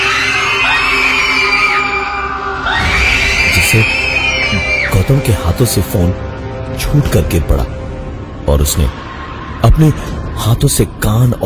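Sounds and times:
group screaming together: 0:00.0 - 0:05.0
speech: 0:03.8 - 0:04.0, 0:05.1 - 0:07.8, 0:08.5 - 0:09.0, 0:09.6 - 0:11.4.

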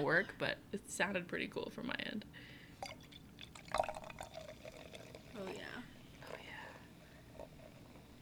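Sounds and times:
speech: 0:00.0 - 0:03.1, 0:05.4 - 0:05.9
beer pouring into a glass: 0:02.8 - 0:08.2.

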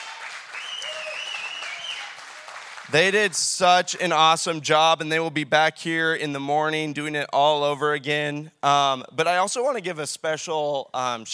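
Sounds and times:
faint whistle: 0:00.0 - 0:02.3
crowd applause: 0:00.0 - 0:03.4
speech: 0:02.9 - 0:11.3.

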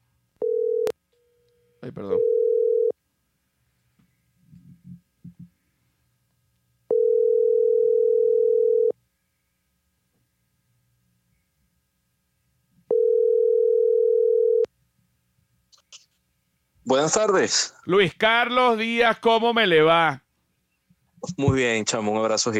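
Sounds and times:
phone ringback tone while placing a call: 0:00.4 - 0:02.9, 0:06.9 - 0:09.0, 0:12.9 - 0:14.7
speech: 0:01.8 - 0:02.4, 0:16.9 - 0:20.2, 0:21.2 - 0:22.5.

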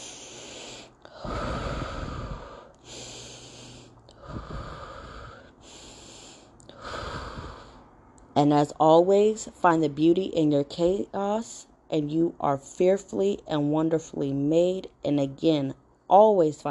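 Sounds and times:
slow deep breaths in and out in a guided breathing exercise: 0:00.0 - 0:08.2
speech: 0:08.4 - 0:16.6.

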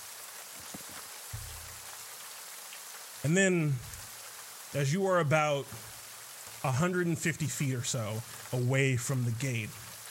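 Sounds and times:
steady rain pouring down on a city: 0:00.0 - 0:10.0
low droning rumble: 0:01.4 - 0:01.9
speech: 0:03.2 - 0:03.9, 0:04.7 - 0:05.9, 0:06.6 - 0:09.8.

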